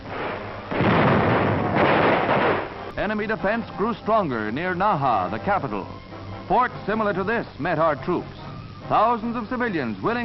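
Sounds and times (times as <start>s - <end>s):
grenade explosions clearing out enemy pillboxes on an island near Naha: 0.0s - 3.0s
speech: 3.0s - 10.2s.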